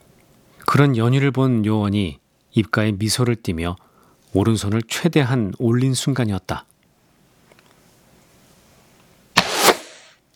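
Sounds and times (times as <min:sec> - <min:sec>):
speech: 0:00.7 - 0:06.7
arrow flying past with a sharp whoosh: 0:09.4 - 0:10.2.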